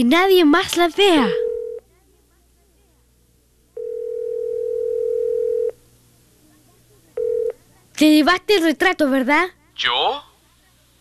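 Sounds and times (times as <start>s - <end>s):
speech: 0.0s - 1.4s, 8.0s - 10.3s
telephone line tone: 1.3s - 1.8s, 3.8s - 5.8s, 7.2s - 7.6s.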